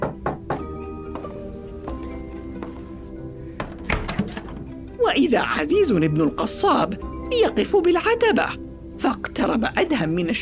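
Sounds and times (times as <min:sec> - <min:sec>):
knocking on a wooden door: 0:00.0 - 0:00.8
musical backdrop with sustained tones: 0:00.0 - 0:10.4
speech: 0:05.2 - 0:10.4.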